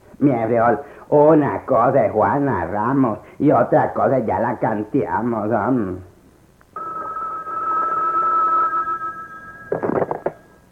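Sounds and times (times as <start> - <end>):
speech: 0.2 - 6.1
telephone ringing with an electronic tone: 6.8 - 10.7.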